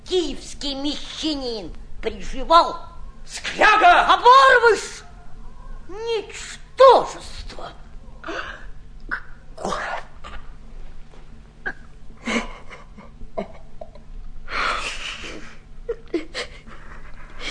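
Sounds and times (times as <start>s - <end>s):
faint steady hum: 0.0s - 17.4s
speech: 0.1s - 5.0s, 5.9s - 8.6s
person sobbing with catching breaths: 12.2s - 17.4s.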